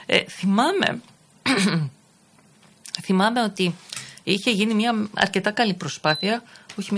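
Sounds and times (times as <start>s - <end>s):
speech: 0.1s - 2.0s, 3.0s - 6.9s
rough voiced throat clearing: 1.5s - 2.0s.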